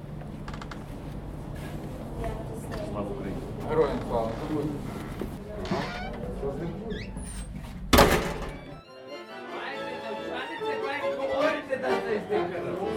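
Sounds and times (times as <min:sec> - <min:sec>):
door creaking and squeaking open: 0:00.4 - 0:00.9, 0:03.8 - 0:08.9
murmur of voices: 0:01.9 - 0:07.5, 0:08.7 - 0:12.9.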